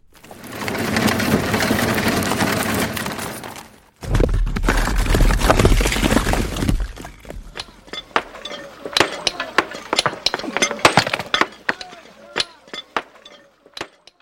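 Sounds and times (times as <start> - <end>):
heavy foundation stones being moved at a palace construction site: 0.0 - 14.1
hammer-on-stone clinks and taps during stonework: 7.3 - 14.2.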